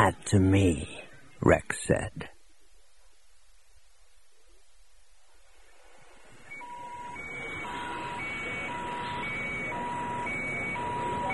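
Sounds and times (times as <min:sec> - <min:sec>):
speech: 0:00.0 - 0:02.3
warbling all-clear sirens alternating electronic tones: 0:06.3 - 0:11.3.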